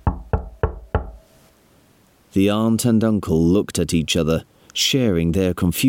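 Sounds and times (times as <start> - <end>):
firm knocking on a wooden door: 0.0 - 1.2
speech: 2.3 - 5.8.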